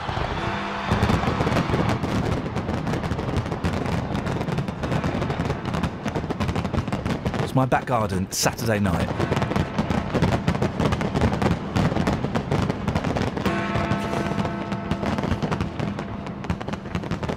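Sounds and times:
fireworks exploding in a back garden: 0:00.0 - 0:17.3
speech: 0:07.6 - 0:09.2.

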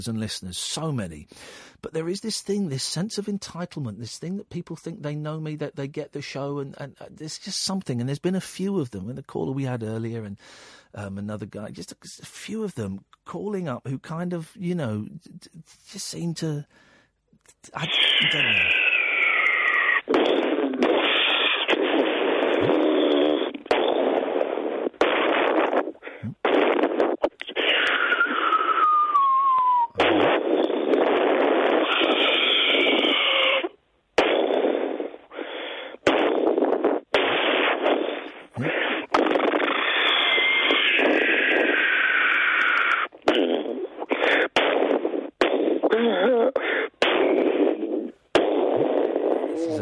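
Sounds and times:
speech: 0:00.0 - 0:16.9, 0:17.6 - 0:18.8
sputtering fart-like blasts: 0:17.8 - 0:49.8
harsh explosion-like booms: 0:20.1 - 0:28.4, 0:30.0 - 0:33.2, 0:34.2 - 0:41.9.

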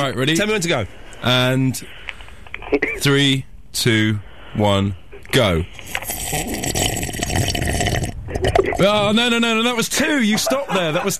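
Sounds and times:
speech: 0:00.0 - 0:02.0, 0:02.6 - 0:07.5, 0:08.3 - 0:11.1
person gulping water quickly in a timed drinking challenge: 0:05.8 - 0:08.9
laughter: 0:09.9 - 0:11.1.

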